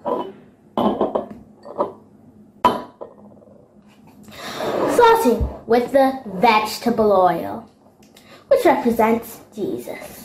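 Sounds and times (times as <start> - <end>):
glassware and containers clinking and knocking while ingredients are poured into a glass: 0.0 - 2.0, 2.6 - 3.2
speech: 5.2 - 7.7, 8.6 - 10.2.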